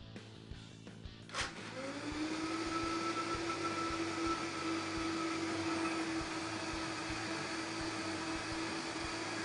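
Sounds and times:
blender motor whirring while blending blanched green herbs with oil: 1.3s - 9.4s.

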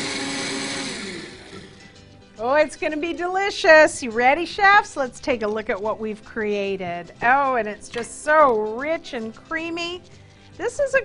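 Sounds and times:
blender blending a milkshake: 0.0s - 2.0s
speech: 2.4s - 11.0s.

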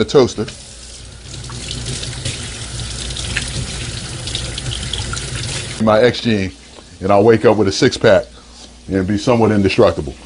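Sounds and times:
speech: 0.0s - 0.7s, 5.8s - 8.3s, 8.9s - 10.2s
running tap water splashing into a sink while hands are washed: 0.2s - 5.8s.

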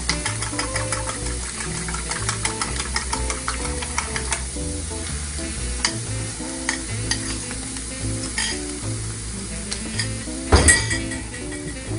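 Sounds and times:
utensil clinking on a pan: 0.0s - 4.4s, 6.6s - 7.5s, 8.2s - 8.8s, 10.0s - 11.9s
whisked eggs with salt and black pepper sizzling in a hot pan: 0.0s - 11.9s
fork scraping and stirring eggs in a pan: 0.1s - 4.4s, 5.8s - 7.5s, 8.2s - 8.8s, 9.8s - 10.2s.

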